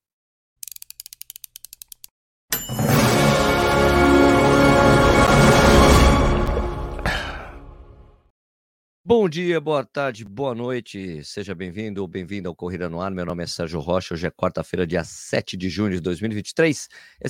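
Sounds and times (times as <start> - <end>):
crisp mechanical ticks in a show intro jingle: 0.6 - 2.1
show intro jingle for a running-shoe review: 2.5 - 7.0
speech: 9.1 - 17.2.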